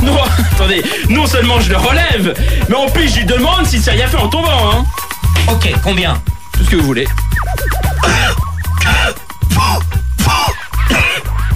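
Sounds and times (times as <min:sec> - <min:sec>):
speech: 0:00.7 - 0:09.0
person clearing throat: 0:08.0 - 0:11.3
person coughing: 0:08.0 - 0:11.3.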